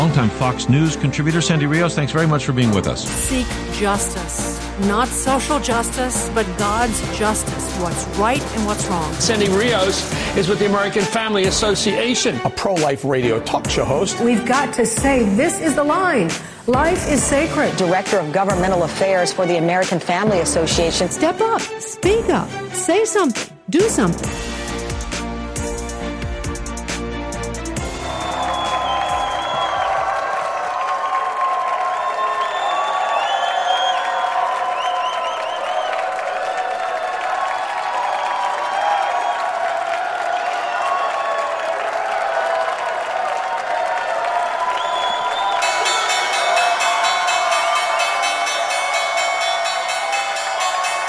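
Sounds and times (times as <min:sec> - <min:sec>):
large crowd applauding and cheering: 0:00.0 - 0:21.2, 0:24.3 - 0:51.0
speech: 0:00.1 - 0:24.5
crowd whoops and whistles: 0:28.0 - 0:30.2, 0:31.9 - 0:36.1, 0:44.7 - 0:45.7
stock exchange opening bell ringing: 0:45.3 - 0:51.0.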